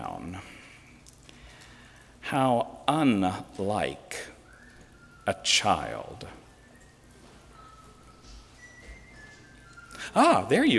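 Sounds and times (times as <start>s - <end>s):
speech: 2.3s - 4.3s, 5.3s - 6.4s, 10.1s - 10.7s
person whistling: 4.1s - 10.7s.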